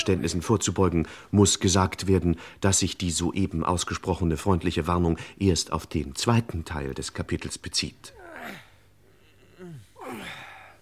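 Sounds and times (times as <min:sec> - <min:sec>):
speech: 0:00.0 - 0:08.6
men grunting during hard labour: 0:08.1 - 0:08.8, 0:09.4 - 0:10.8
men breathing heavily during hard labour: 0:09.0 - 0:10.8.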